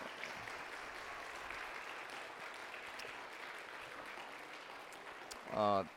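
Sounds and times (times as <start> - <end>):
audience applauding after a musical performance: 0.0 - 5.9.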